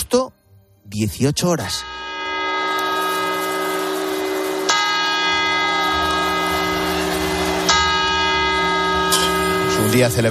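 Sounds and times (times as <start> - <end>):
speech: 0.1 - 2.1, 9.8 - 10.2
large clock-tower bell in Madrid tolling for the New Year: 1.6 - 10.2.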